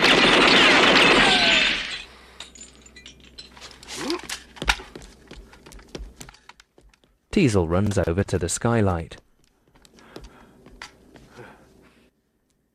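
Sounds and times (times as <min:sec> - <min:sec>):
gunfire tearing a building to pieces: 0:00.0 - 0:02.1
falling fragments clinking: 0:00.0 - 0:04.0
debris breaking: 0:00.0 - 0:04.9
speech: 0:07.4 - 0:09.2.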